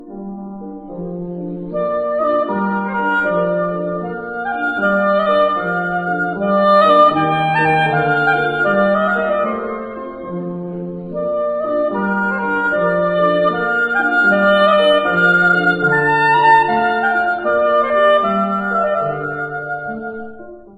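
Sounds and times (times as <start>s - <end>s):
oboe: 0.0s - 20.7s.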